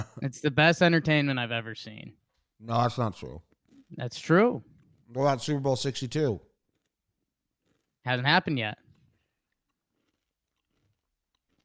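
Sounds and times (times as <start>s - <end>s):
speech: 0.2s - 6.5s, 8.0s - 8.8s
crunchy chewing of a granola bar: 2.3s - 8.0s, 8.8s - 11.6s.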